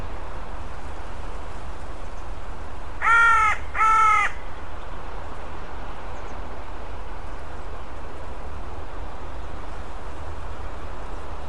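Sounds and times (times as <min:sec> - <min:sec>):
low steady hum: 0:00.0 - 0:11.4
bird giving harsh harmonic caw-like calls: 0:03.0 - 0:04.5.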